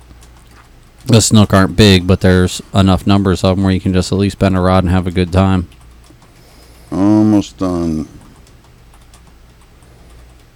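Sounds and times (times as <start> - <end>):
typing on a computer keyboard: 0.0 - 1.2, 5.0 - 6.4, 7.9 - 10.5
low hum: 0.0 - 10.5
speech: 1.0 - 5.8, 6.9 - 8.2.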